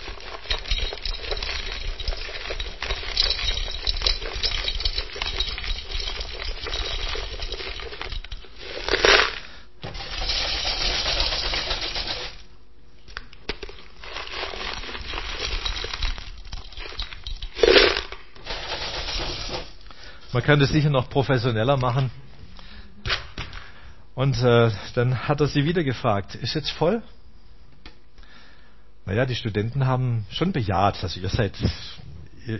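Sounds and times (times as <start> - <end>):
pebbles pouring from a bucket into a glass jar: 0.0 - 12.4, 13.6 - 19.8
speech: 20.4 - 22.2, 24.2 - 27.2, 29.1 - 32.5.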